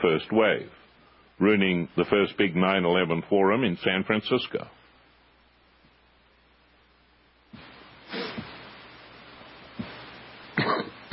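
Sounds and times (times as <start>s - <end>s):
speech: 0.0s - 0.8s, 1.4s - 4.8s
person coughing harshly: 10.6s - 11.1s
throat clearing: 10.6s - 11.1s.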